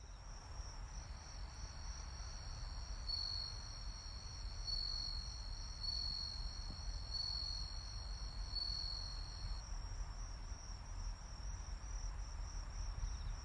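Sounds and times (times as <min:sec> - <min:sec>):
crickets trilling: 0:00.0 - 0:13.4
low rumbling background noise: 0:00.0 - 0:13.4
pulsing lower cricket trill: 0:00.8 - 0:09.6.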